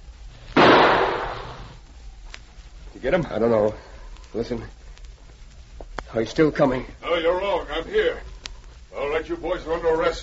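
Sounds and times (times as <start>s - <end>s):
gunshot: 0.6s - 1.8s
speech: 3.0s - 4.8s, 6.1s - 8.3s, 9.0s - 10.2s.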